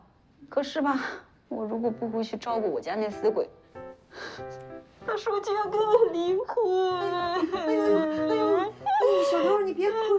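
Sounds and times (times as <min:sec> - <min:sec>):
speech: 0:00.5 - 0:03.6, 0:04.2 - 0:10.1
woman sobbing and wailing in distress: 0:05.6 - 0:10.1.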